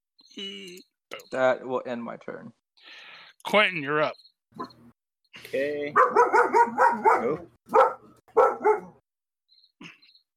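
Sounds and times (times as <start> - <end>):
speech: 0.4 - 7.9
dog barking loudly: 5.9 - 9.0.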